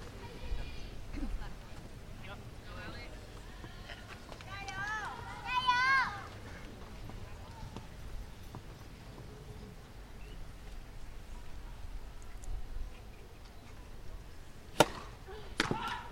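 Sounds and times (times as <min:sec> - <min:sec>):
low steady crowd murmur at a large tennis tournament: 0:00.0 - 0:16.1
crisp tennis racket strikes in mixed doubles: 0:14.8 - 0:15.7.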